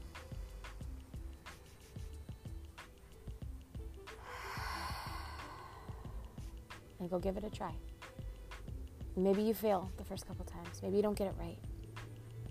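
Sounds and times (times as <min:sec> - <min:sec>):
quiet regularly pulsing background: 0:00.0 - 0:09.2
deep breath: 0:04.1 - 0:06.6
speech: 0:07.0 - 0:08.0, 0:09.2 - 0:11.7.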